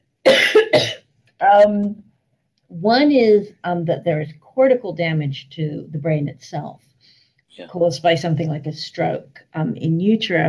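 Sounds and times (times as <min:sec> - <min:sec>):
person coughing: 0:00.3 - 0:01.0
speech: 0:00.8 - 0:02.1, 0:02.7 - 0:06.9, 0:07.5 - 0:10.4.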